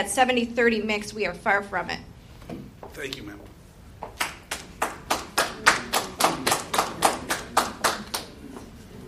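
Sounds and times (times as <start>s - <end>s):
speech: 0.0s - 3.6s
audience applauding at a public city meeting: 4.0s - 8.4s.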